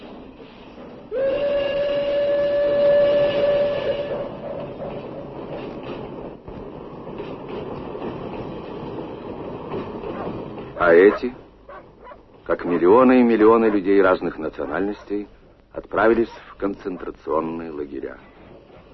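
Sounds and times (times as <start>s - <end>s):
train clattering along rails: 0.0s - 18.9s
long train whistle blast: 1.1s - 4.4s
speech: 10.9s - 11.4s, 12.5s - 18.3s.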